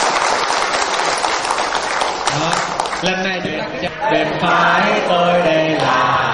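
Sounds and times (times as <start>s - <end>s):
audience applause at a live event: 0.0s - 3.2s
speech: 2.4s - 6.2s.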